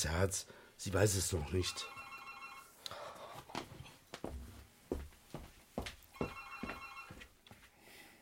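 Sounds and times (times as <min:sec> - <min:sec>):
speech: 0:00.0 - 0:02.0
telephone bell ringing in a home: 0:01.4 - 0:02.8, 0:06.1 - 0:07.3.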